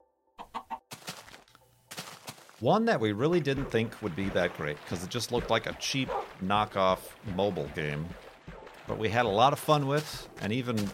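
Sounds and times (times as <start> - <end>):
chicken clucking: 0.4 - 0.9
speech: 2.6 - 8.2, 8.9 - 10.9.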